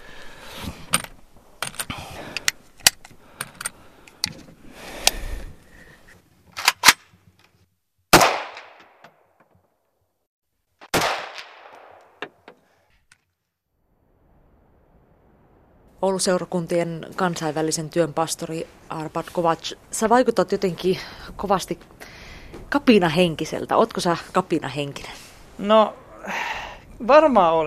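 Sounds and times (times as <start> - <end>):
mechanical clicks and gun handling noises: 0.9 - 5.2
gunshots fired from a gun: 8.1 - 9.0, 10.8 - 12.3
speech: 16.0 - 22.0, 22.7 - 26.4, 27.0 - 27.6.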